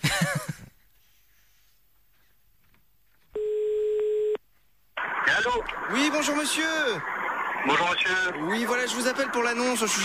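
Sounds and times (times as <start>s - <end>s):
quiet telephone line hiss: 0.4s - 10.0s
telephone line tone while placing a call: 3.4s - 4.4s
speech: 5.4s - 10.0s.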